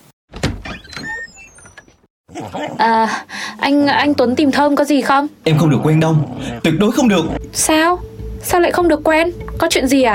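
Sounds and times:
door opening with a rattling scraping slide and high squeaks: 0.3 - 2.1
speech: 2.3 - 10.1.

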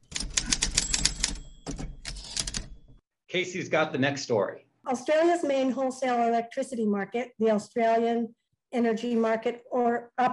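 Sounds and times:
rapid mechanical typewriter clacking: 0.0 - 3.0
speech: 3.3 - 10.3.

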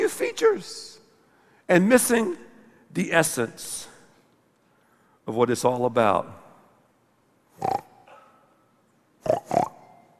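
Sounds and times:
speech: 0.2 - 0.9, 1.7 - 3.9, 5.3 - 6.4, 7.6 - 7.9
pig snorting, grunting and oinking: 7.6 - 8.2, 9.2 - 9.9.

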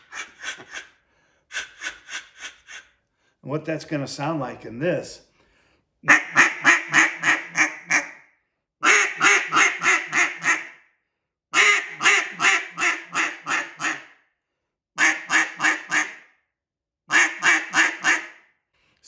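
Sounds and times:
cut-down duck call quacking: 0.0 - 0.9, 6.0 - 8.2, 8.8 - 10.8, 11.6 - 14.1, 15.0 - 16.2, 17.1 - 18.4
speech: 3.5 - 5.3.

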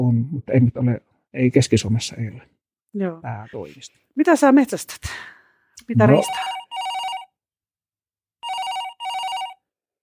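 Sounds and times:
speech: 0.0 - 6.6
telephone ringing with warbling electronic tone: 6.0 - 7.3, 8.4 - 9.6.

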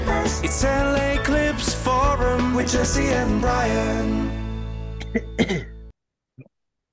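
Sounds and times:
speech: 0.2 - 4.4
person clearing throat with rough raspy bursts: 5.0 - 5.8.

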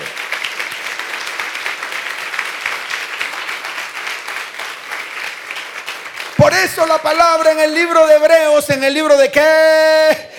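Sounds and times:
large indoor audience applauding: 0.0 - 8.0
speech: 6.5 - 10.3.

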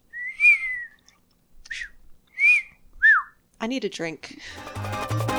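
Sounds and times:
attempted whistling with a dry mouth: 0.0 - 3.4
speech: 3.6 - 5.2.

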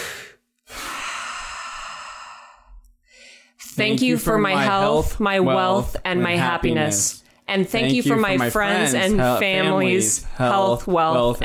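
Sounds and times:
deep breath taken before a spoken affirmation: 0.0 - 3.6
speech: 3.8 - 11.4.

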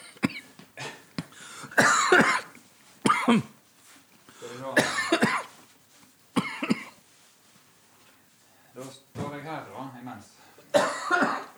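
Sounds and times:
person coughing from choking on candy: 0.0 - 3.5, 4.6 - 5.5, 6.4 - 7.0, 10.7 - 11.5
strained gasps of a person choking on candy: 0.8 - 1.8, 4.2 - 4.8
speech: 3.3 - 3.6.

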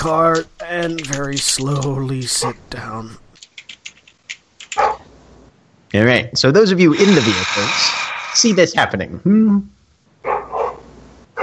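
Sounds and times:
speech: 0.0 - 3.2, 6.0 - 9.8
dog barking in a park: 4.7 - 5.1, 10.2 - 11.4.

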